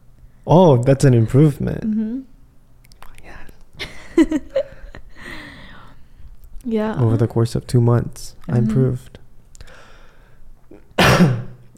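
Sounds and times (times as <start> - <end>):
speech: 0.5 - 2.3, 4.2 - 4.7, 6.6 - 9.2, 11.2 - 11.7
loud harsh cough: 10.7 - 11.6.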